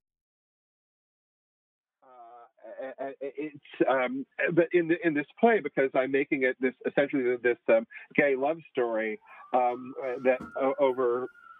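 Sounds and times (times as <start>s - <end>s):
laughter: 2.6s - 11.3s
speech: 2.8s - 11.4s
police siren high whistling tone: 9.2s - 11.5s.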